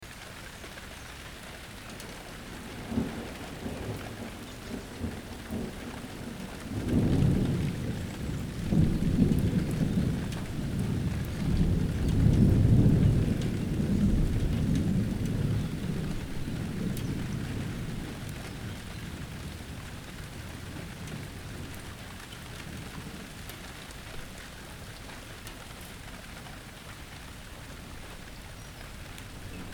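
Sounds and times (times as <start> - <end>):
rain: 0.0 - 29.7
thunder: 2.6 - 21.8.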